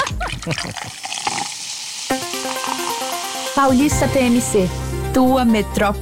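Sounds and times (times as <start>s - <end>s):
tonic water bottle opening crack: 0.1s - 3.0s
carbonated tonic water fizzing while poured: 0.1s - 3.8s
speech: 0.4s - 1.2s, 3.6s - 6.0s.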